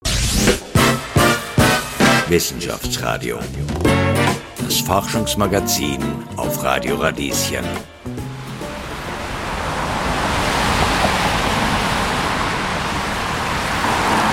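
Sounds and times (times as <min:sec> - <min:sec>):
music: 0:00.0 - 0:09.5
speech: 0:02.3 - 0:07.9
heavy city traffic on the Währinger Gürtel: 0:07.8 - 0:14.3.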